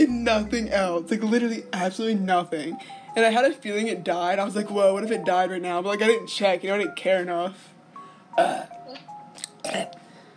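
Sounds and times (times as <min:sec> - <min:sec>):
speech: 0:00.0 - 0:07.7, 0:08.4 - 0:09.0, 0:09.6 - 0:10.0
burps: 0:08.4 - 0:08.8, 0:09.4 - 0:10.0.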